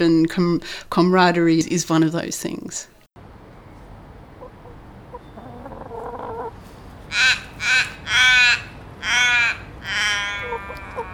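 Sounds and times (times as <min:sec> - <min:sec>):
speech: 0:00.0 - 0:02.9
forest raven cawing: 0:07.1 - 0:11.1.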